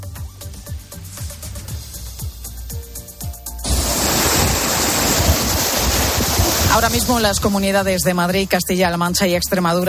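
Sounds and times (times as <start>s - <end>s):
water rushing from intense rain: 3.6s - 7.6s
speech: 6.8s - 9.8s.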